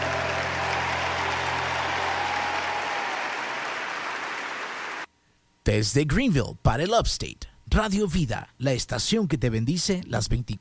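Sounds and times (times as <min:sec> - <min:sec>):
crowd applauding a king: 0:00.0 - 0:05.1
speech: 0:05.6 - 0:10.5.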